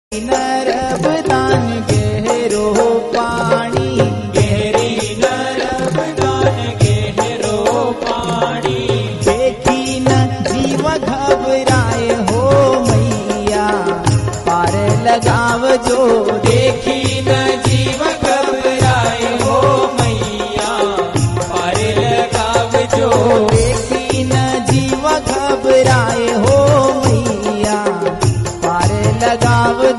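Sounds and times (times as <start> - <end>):
romantic Gujarati music: 0.2 - 29.9.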